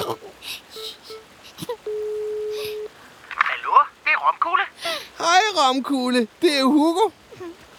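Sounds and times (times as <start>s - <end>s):
faint noise: 0.0s - 7.7s
speech: 0.1s - 0.7s, 5.7s - 7.2s
telephone ringback tone while a call is placed: 0.8s - 2.9s.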